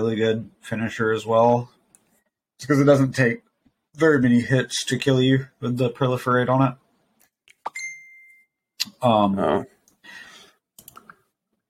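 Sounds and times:
speech: 0.0s - 1.8s, 2.6s - 6.8s, 9.0s - 10.2s
phone notification ding: 7.7s - 8.6s.

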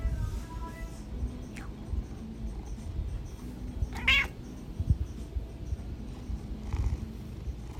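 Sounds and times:
steady low rumbling background: 0.0s - 7.7s
pet cat meowing: 4.0s - 4.4s.

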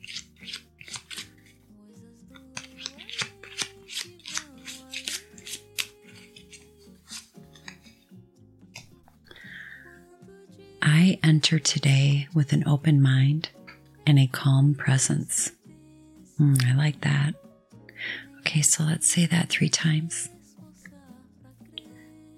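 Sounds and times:
deck of daily affirmation cards being shuffled: 0.0s - 1.6s, 2.3s - 7.9s
soft steady music: 0.0s - 22.3s
speech: 11.2s - 13.5s, 14.1s - 15.4s, 16.4s - 17.4s, 18.5s - 20.4s.

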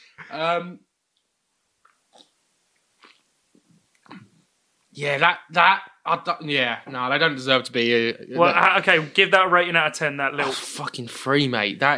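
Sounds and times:
speech: 0.2s - 0.9s, 5.0s - 11.9s
gum being chewed: 1.8s - 4.3s
short loud voiced bursts: 10.3s - 11.0s.

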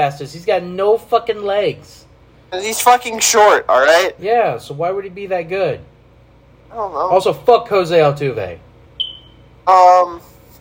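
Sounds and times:
speech: 0.0s - 5.9s, 6.7s - 8.7s, 9.6s - 10.3s
high-pitched fire alarm beep: 9.0s - 9.5s.

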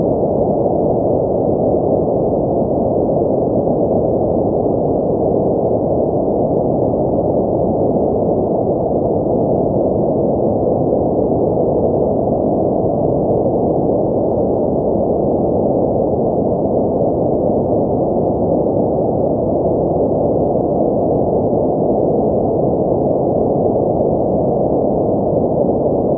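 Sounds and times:
deep ocean-like white noise: 0.0s - 26.1s.

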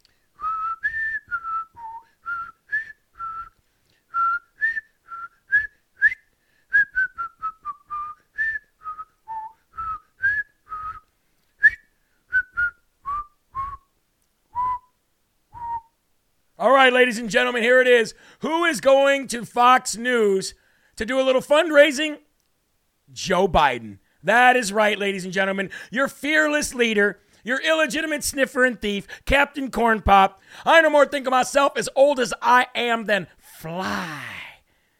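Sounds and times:
person whistling quiz-show think music: 0.4s - 13.9s, 14.6s - 15.0s, 15.6s - 16.0s
speech: 16.8s - 22.2s, 23.2s - 34.4s.

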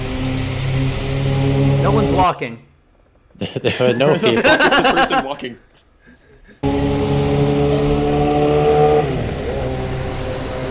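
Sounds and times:
motorcycle engine roaring as it passes down the street: 0.0s - 2.3s, 6.6s - 10.7s
speech: 1.8s - 2.7s, 3.4s - 5.7s
laughter: 3.4s - 6.6s.

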